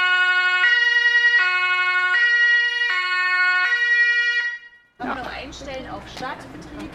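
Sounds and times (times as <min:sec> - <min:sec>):
two-tone police car siren: 0:00.0 - 0:05.0
speech: 0:05.5 - 0:06.9.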